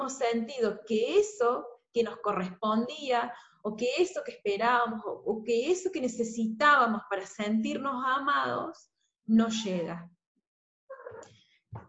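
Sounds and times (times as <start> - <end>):
speech: 0.0 - 10.2
cat meowing: 10.9 - 11.3.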